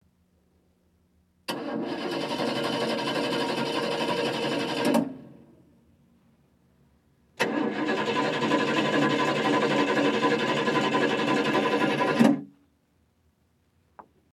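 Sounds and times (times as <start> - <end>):
old car starting: 1.5 - 5.4, 7.4 - 12.4.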